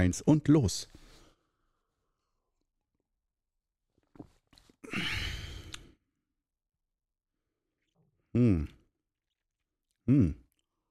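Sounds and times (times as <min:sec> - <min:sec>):
speech: 0:00.0 - 0:01.0, 0:08.4 - 0:08.8, 0:10.1 - 0:10.4
person taking a deep slow mindfulness breath: 0:04.8 - 0:06.0.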